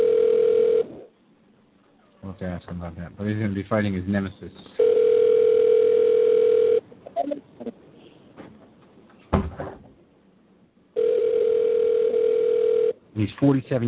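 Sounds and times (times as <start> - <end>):
telephone dial tone on a phone call: 0.0 - 0.9, 4.8 - 6.8, 11.0 - 13.0
speech: 2.4 - 4.8, 13.4 - 13.8.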